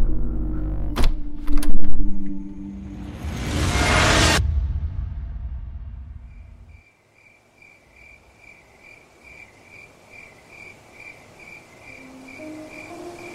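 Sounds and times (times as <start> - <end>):
low rumble: 0.1 - 6.8
crickets chirping: 6.3 - 13.3.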